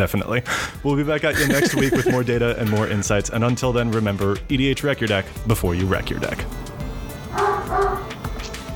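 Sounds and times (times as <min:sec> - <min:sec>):
speech: 0:00.0 - 0:06.5
laughter: 0:01.3 - 0:02.4
dog barking: 0:07.3 - 0:08.2.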